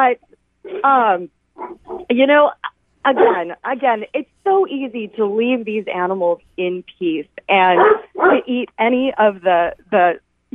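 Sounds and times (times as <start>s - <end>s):
speech: 0.0s - 1.4s, 2.1s - 10.5s
dog barking and yowling: 1.6s - 2.1s, 3.1s - 3.6s, 7.8s - 8.5s.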